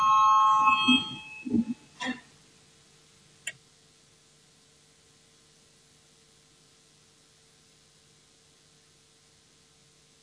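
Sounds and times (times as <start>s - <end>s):
loud steady electronic parliament voting bell ringing: 0.0s - 1.8s
brief faint tone: 0.0s - 2.2s.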